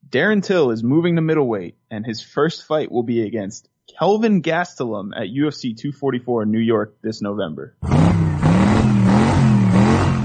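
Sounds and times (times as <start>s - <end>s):
speech: 0.1s - 8.3s
car engine revving hard: 7.8s - 10.2s.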